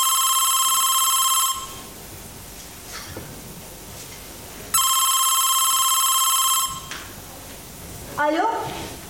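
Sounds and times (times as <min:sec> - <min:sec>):
electronic telephone ring: 0:00.0 - 0:01.9, 0:04.8 - 0:06.9
speech: 0:08.2 - 0:08.8.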